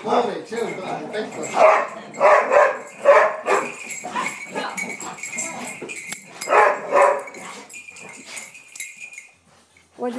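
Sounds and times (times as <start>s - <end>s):
speech: 0.0s - 2.6s
several dogs including an assistance dog playing and barking: 1.5s - 5.4s, 6.4s - 7.6s.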